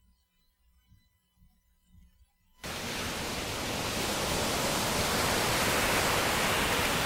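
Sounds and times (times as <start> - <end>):
ocean waves: 2.6 - 7.0.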